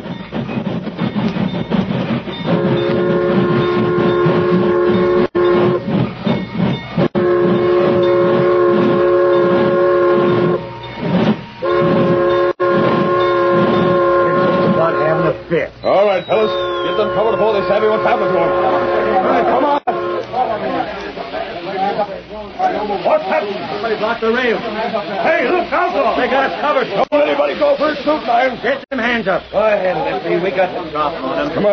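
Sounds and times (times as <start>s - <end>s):
train rumbling: 0.0s - 31.7s
long loud train whistle blasts: 2.5s - 6.0s, 7.2s - 10.8s, 11.5s - 15.4s, 16.2s - 20.6s
high squeal of train slowing to a stop: 15.8s - 18.9s.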